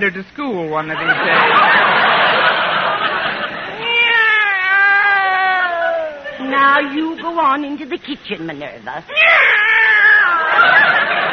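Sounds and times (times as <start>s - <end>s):
speech: 0.0s - 1.8s, 6.4s - 9.5s
laughter: 0.9s - 4.2s, 10.3s - 11.3s
cat meowing: 3.8s - 6.2s, 9.1s - 10.6s.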